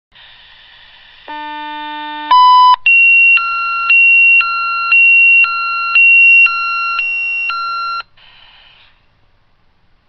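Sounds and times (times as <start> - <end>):
watchdog alert tone: 2.3 - 8.0.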